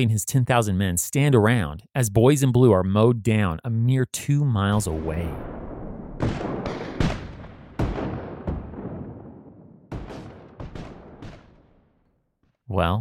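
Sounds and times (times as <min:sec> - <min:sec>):
speech: 0:00.0 - 0:05.6, 0:12.7 - 0:12.9
artillery fire in a Civil War battle: 0:05.2 - 0:12.1
rifle shots in a Civil War battle: 0:05.4 - 0:11.8.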